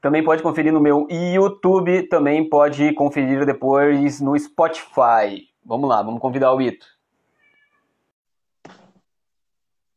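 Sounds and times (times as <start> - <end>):
speech: 0.0 - 7.0
cat meowing: 7.3 - 8.1.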